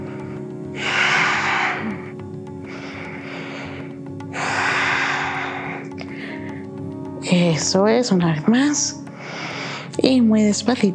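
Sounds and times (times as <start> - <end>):
deep breathing in and out while holding a yoga pose: 0.0 - 6.8, 9.1 - 10.0
speech: 7.3 - 9.0, 10.1 - 10.9.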